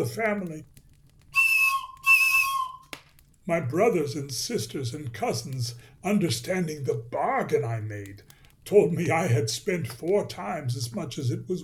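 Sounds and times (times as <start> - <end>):
speech: 0.0 - 0.8, 3.5 - 11.6
toy whistle blown in shrill steady blasts: 1.4 - 2.9.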